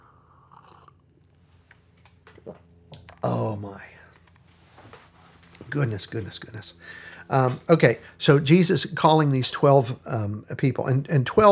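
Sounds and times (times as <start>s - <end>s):
person sipping coffee: 0.0s - 1.0s
soft wet slurping and swallowing: 0.4s - 1.0s
speech: 5.7s - 11.4s.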